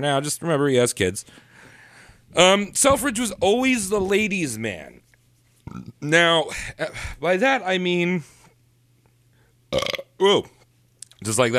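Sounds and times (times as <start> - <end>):
speech: 0.0 - 1.5, 2.3 - 5.0, 5.7 - 8.4, 9.7 - 10.6, 11.2 - 11.5
loud throaty belch from a person: 5.7 - 6.0, 9.7 - 10.2.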